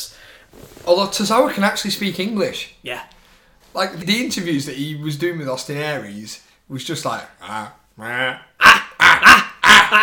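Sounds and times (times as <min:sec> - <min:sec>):
speech: 0:00.5 - 0:08.8
man imitating a dog's bark: 0:08.2 - 0:10.0.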